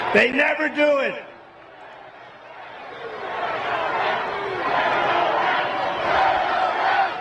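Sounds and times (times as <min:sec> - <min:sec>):
speech: 0:00.1 - 0:01.3
large rally crowd chanting in unison: 0:01.7 - 0:07.1.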